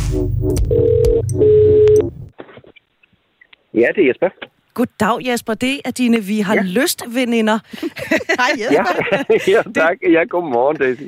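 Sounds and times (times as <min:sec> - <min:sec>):
phone number keyed in as short electronic tones: 0:00.2 - 0:02.1
speech: 0:03.8 - 0:11.0
laughter: 0:06.6 - 0:10.0.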